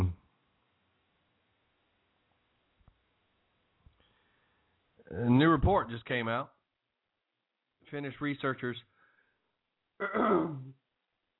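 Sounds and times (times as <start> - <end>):
speech: 5.1 - 6.6, 7.9 - 8.9, 10.0 - 10.8
rough throaty throat clearing while choking: 10.0 - 10.8.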